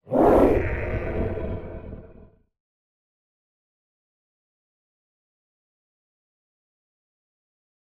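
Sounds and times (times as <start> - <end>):
small dragon creature roar: 0.0 - 2.4.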